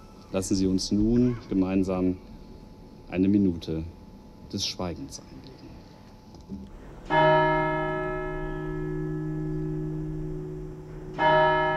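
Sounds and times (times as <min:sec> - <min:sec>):
speech: 0:00.3 - 0:02.3, 0:03.1 - 0:05.4
church bell striking: 0:06.7 - 0:11.7.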